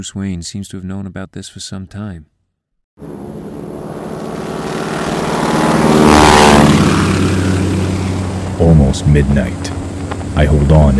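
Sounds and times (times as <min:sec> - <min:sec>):
speech: 0:00.0 - 0:02.4, 0:08.6 - 0:09.8, 0:10.4 - 0:10.9
crop duster propeller plane engine droning in flight: 0:03.0 - 0:10.9.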